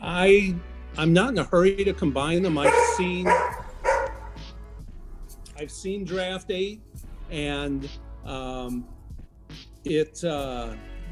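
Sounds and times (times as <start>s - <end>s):
speech: 0.1s - 3.6s, 5.6s - 8.9s, 9.8s - 10.9s
dog howling: 2.5s - 4.4s.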